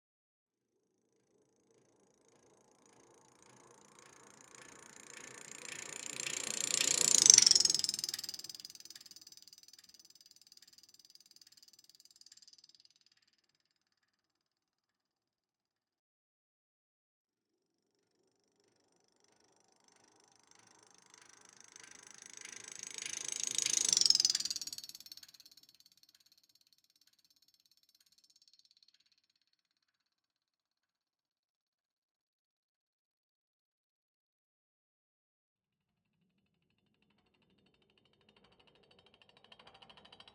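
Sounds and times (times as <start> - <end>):
maracas with doppler effect: 4.6 - 10.0, 22.4 - 25.6.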